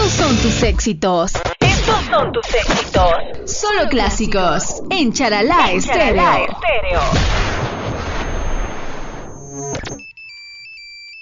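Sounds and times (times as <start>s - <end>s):
speech: 0.6s - 7.4s
rough noisy burst: 6.4s - 10.0s
short cell phone electronic ringtone: 9.4s - 11.2s.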